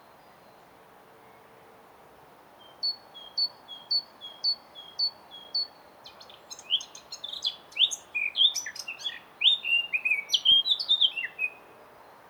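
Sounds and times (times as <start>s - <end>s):
low background hiss: 0.0s - 12.2s
Eurasian blackcap Sylvia atricapilla singing: 2.8s - 11.6s.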